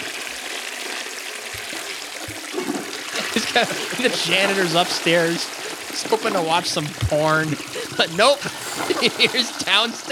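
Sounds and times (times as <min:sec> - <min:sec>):
toilet flushing: 0:00.0 - 0:10.1
laughter: 0:03.1 - 0:10.1
speech: 0:03.4 - 0:10.1.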